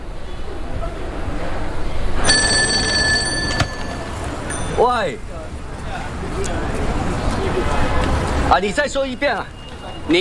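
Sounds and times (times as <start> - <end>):
steady background of low murmuring noise: 0.0 - 10.2
old-style telephone bell ringing: 2.2 - 4.8
speech: 4.8 - 5.3, 8.5 - 10.2.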